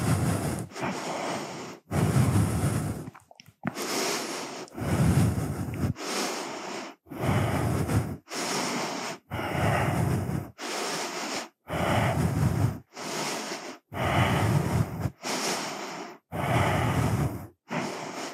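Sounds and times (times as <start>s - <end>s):
slow yoga breathing during a standing balance pose: 0.0s - 18.3s.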